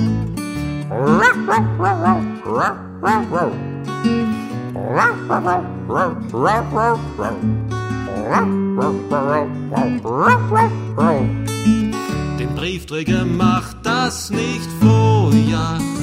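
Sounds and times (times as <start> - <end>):
steady musical backing: 0.0 - 16.0
dog barking: 0.9 - 3.6, 4.8 - 11.4
speech: 1.4 - 16.0.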